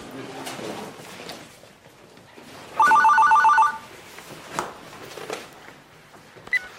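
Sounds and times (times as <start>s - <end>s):
room noise: 0.0s - 6.7s
telephone ringing in a bright trilling burst: 2.8s - 3.9s.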